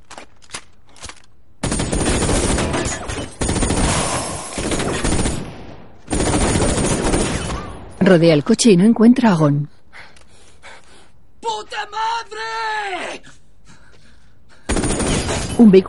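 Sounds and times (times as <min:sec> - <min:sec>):
rapid continuous gunfire: 0:01.6 - 0:07.8, 0:14.6 - 0:15.6
gunshots fired at a man in an action thriller scene: 0:01.6 - 0:08.0, 0:14.6 - 0:15.6
speech: 0:08.1 - 0:09.8, 0:15.6 - 0:15.8.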